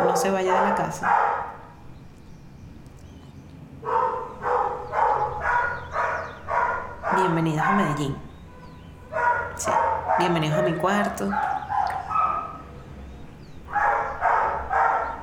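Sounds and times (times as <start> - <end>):
dog barking: 0.0 - 1.7, 3.8 - 8.3, 9.1 - 12.7, 13.7 - 15.2
speech: 0.2 - 1.4, 7.2 - 8.2, 9.6 - 11.5.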